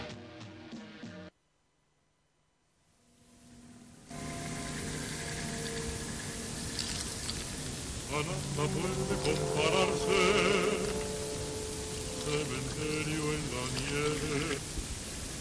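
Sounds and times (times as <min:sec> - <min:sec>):
broadband rush of water: 0:04.1 - 0:15.3.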